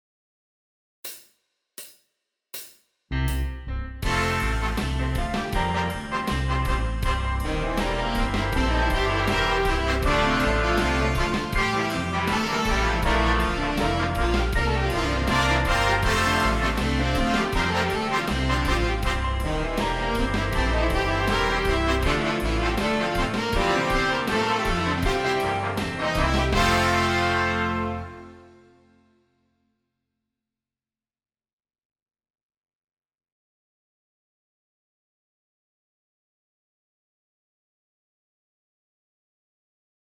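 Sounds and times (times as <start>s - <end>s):
horns playing in fifths: 3.4s - 29.0s.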